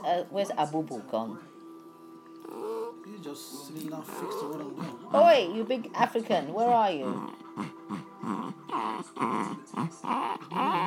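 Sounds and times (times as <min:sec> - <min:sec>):
speech: 0:00.1 - 0:01.5, 0:02.4 - 0:10.8
dog growling: 0:01.6 - 0:03.1, 0:03.8 - 0:05.6, 0:06.5 - 0:10.8
dog making whiny vocal bursts: 0:02.4 - 0:03.0, 0:07.0 - 0:10.8.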